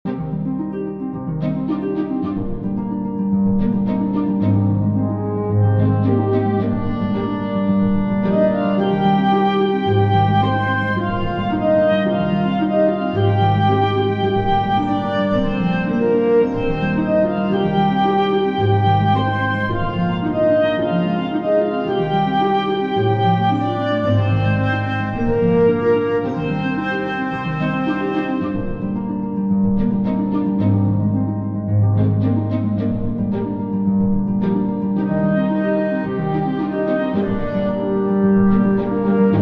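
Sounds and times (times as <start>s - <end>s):
world map music loop: 0.1s - 39.4s.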